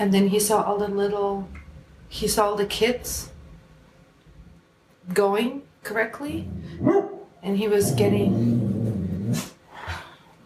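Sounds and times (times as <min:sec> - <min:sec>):
speech: 0:00.0 - 0:03.3, 0:05.1 - 0:08.7, 0:09.3 - 0:09.5
dog growling low: 0:06.3 - 0:07.0, 0:07.8 - 0:09.6
dog barking: 0:06.8 - 0:07.3.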